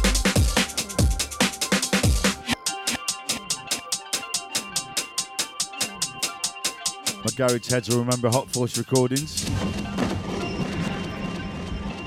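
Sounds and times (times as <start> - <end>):
heavy booming bass kicks: 0.0 - 1.2
rave music track with no vocals: 0.0 - 12.0
speech: 7.4 - 10.1.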